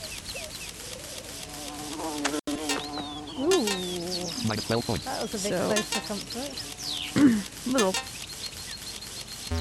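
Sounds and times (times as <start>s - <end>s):
synthetic video game wasp buzz: 0.9s - 8.3s
speech: 4.5s - 8.2s.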